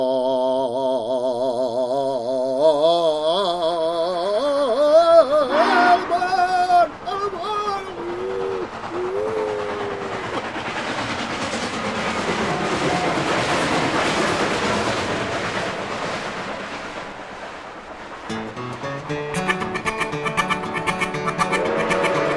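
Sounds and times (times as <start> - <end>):
steam train engine chugging on rails: 0.0 - 22.3
rhythmic tune with plucked bouncy instruments: 18.4 - 22.3.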